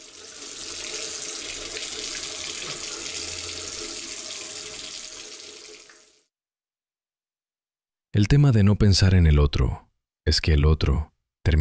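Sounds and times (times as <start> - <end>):
water running from a sink tap: 0.0 - 6.3
speech: 8.2 - 11.6.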